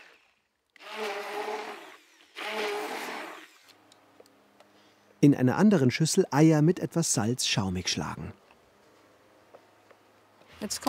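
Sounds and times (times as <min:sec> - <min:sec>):
blender puréeing cooked beetroot with oil: 0:00.0 - 0:03.8
speech: 0:05.2 - 0:08.4, 0:10.7 - 0:10.8.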